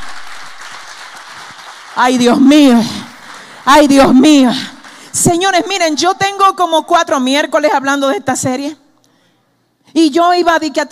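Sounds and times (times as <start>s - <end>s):
audience applauding: 0.0s - 5.5s
speech: 2.0s - 3.0s, 3.7s - 8.8s, 10.0s - 10.9s.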